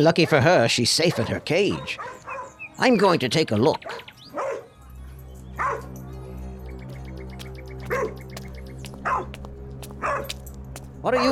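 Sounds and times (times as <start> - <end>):
speech: 0.0 - 2.2, 2.8 - 4.1, 11.0 - 11.3
wild dogs barking: 0.0 - 2.8, 3.8 - 4.8, 5.5 - 6.0, 7.8 - 10.5
steady low rumbling hum: 5.1 - 11.3.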